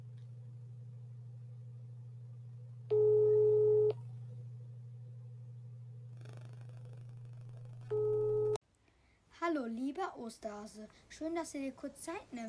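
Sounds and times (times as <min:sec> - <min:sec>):
constant low telephone line hum: 0:00.0 - 0:08.6
telephone call tone beeps while a call tries to connect: 0:02.9 - 0:04.0, 0:07.9 - 0:08.6
speech: 0:09.5 - 0:12.4.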